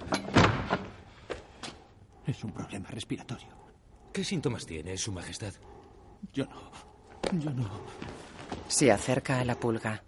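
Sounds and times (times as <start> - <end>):
bedroom door opening with wooden clunks and thumps: 0.0 - 0.9
speech: 2.3 - 3.6, 4.2 - 10.0.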